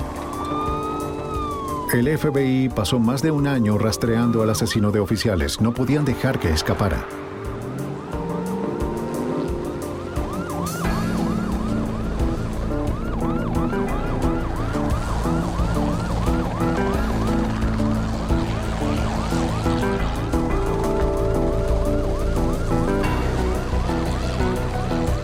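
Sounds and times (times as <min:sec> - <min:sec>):
police patrol car sirens wailing during a police chase: 0:00.0 - 0:25.2
speech: 0:01.9 - 0:07.2
roar of moving traffic and engines: 0:06.2 - 0:25.2.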